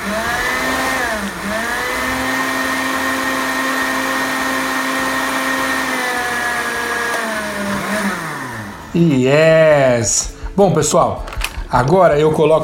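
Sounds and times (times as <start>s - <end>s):
blender mixing oat and flaxseed cream: 0.0s - 9.2s
speech: 9.0s - 12.6s.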